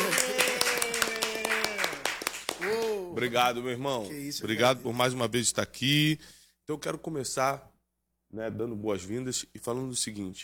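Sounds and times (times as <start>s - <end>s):
audience clapping welcoming a guest: 0.0s - 3.4s
speech: 3.2s - 7.7s, 8.3s - 10.4s.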